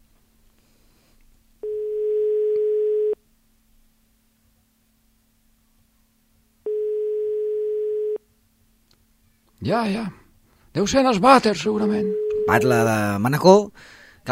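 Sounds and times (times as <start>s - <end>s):
faint low hum: 0.0s - 14.2s
telephone ringback tone, call not answered: 1.6s - 3.2s, 6.7s - 8.2s, 11.8s - 12.8s
speech: 9.6s - 10.2s, 10.8s - 14.2s.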